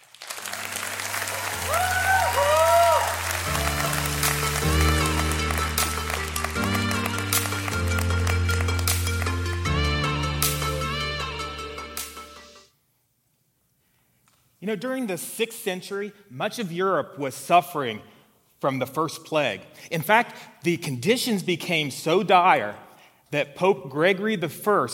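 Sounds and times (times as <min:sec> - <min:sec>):
audience applauding welcoming speaker to stage: 0:00.0 - 0:09.7
upbeat music with deep bass notes: 0:02.9 - 0:12.6
speech: 0:14.7 - 0:24.9.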